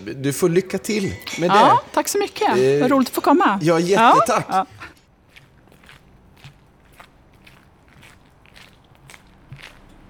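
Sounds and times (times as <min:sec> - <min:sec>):
speech: 0:00.0 - 0:04.8
laughter: 0:00.8 - 0:05.0
footsteps crunching along a path: 0:04.8 - 0:10.0.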